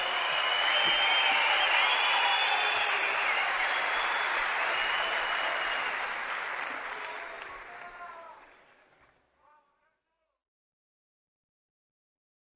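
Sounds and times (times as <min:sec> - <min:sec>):
crowd applauding at a party: 0:00.0 - 0:09.2.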